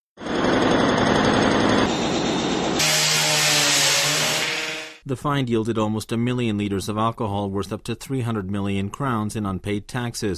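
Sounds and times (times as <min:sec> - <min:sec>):
hydraulic jackhammer mounted on a digger breaking a concrete floor: 0:00.2 - 0:05.0
speech: 0:05.1 - 0:10.3.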